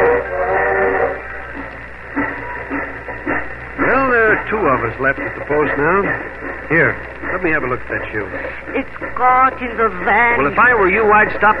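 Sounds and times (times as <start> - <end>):
train whistle-like tone: 0.0 - 1.6
train pulling out of the station chugging: 0.0 - 11.5
speech: 4.5 - 11.5.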